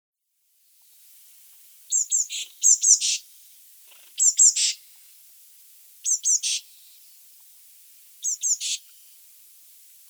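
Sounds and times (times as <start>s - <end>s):
Eurasian blue tit Cyanistes caeruleus calling: 1.9s - 3.2s, 4.2s - 4.8s, 6.0s - 6.7s, 8.2s - 8.9s.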